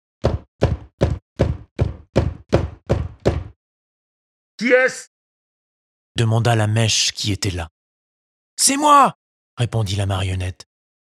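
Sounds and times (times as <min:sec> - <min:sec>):
solid knocks on the wooden door of a house: 0:00.2 - 0:03.6
speech: 0:04.6 - 0:05.1, 0:06.2 - 0:07.8, 0:08.6 - 0:10.7.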